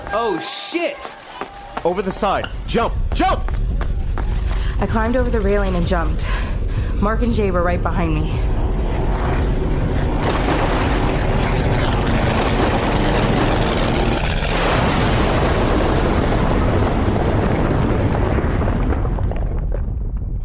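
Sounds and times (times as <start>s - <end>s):
speech: 0.2s - 1.2s, 1.9s - 3.7s, 4.8s - 6.5s, 7.0s - 8.5s
sharp explosion blasts: 6.5s - 20.4s
bridge being destroyed with a thunderous sustained roar: 8.5s - 20.3s.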